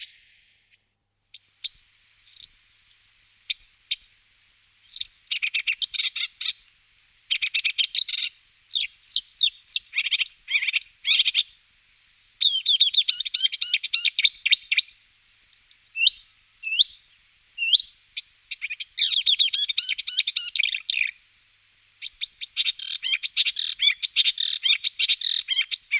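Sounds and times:
Marsh warbler Acrocephalus palustris song: 0:02.3 - 0:02.6, 0:04.8 - 0:06.6, 0:07.3 - 0:11.5, 0:12.4 - 0:14.9, 0:15.9 - 0:21.2, 0:22.0 - 0:25.9.

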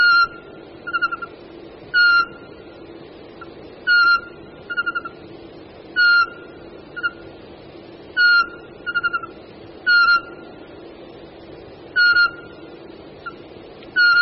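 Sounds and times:
male pygmy owl whistling territorial call: 0:00.0 - 0:02.5, 0:03.4 - 0:05.2, 0:06.0 - 0:07.2, 0:08.2 - 0:10.5, 0:11.9 - 0:13.4, 0:14.0 - 0:14.2.

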